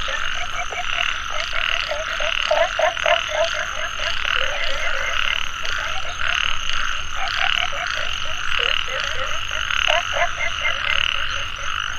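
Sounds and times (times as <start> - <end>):
frogs croaking in a dense chorus in a mountain valley at dusk: 0.0 - 11.9.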